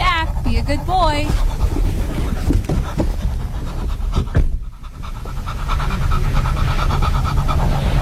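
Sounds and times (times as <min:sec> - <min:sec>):
dog panting rapidly in a hot car: 0:00.0 - 0:08.0
speech: 0:00.7 - 0:01.6.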